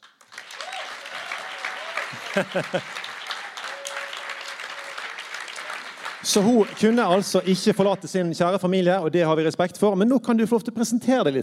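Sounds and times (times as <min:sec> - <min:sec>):
crowd applauding: 0:00.0 - 0:08.4
faint voice or cheer: 0:00.5 - 0:02.4, 0:03.3 - 0:05.9
laughter: 0:00.6 - 0:05.0
speech: 0:02.4 - 0:03.0, 0:06.2 - 0:11.4.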